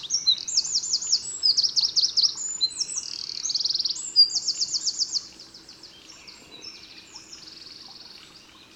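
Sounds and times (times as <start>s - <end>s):
Eurasian wren Troglodytes troglodytes singing: 0.0s - 8.6s.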